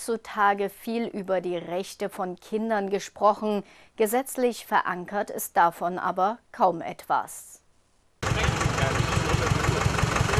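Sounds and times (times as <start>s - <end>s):
speech: 0.0s - 7.6s
tractor diesel engine idling at a festival ground in Hartmannsdorf, Germany: 8.2s - 10.3s.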